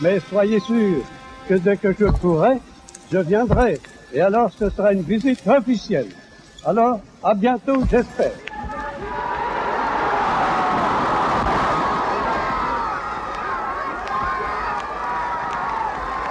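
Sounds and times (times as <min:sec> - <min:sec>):
speech: 0:00.0 - 0:08.7
several thousand people cheering in front of the city hall in Paris: 0:08.4 - 0:16.2.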